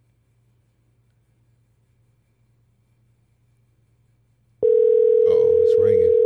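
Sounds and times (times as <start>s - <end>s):
steady electronic phone call ringing tone: 4.6s - 6.2s
person speaking: 5.3s - 6.2s.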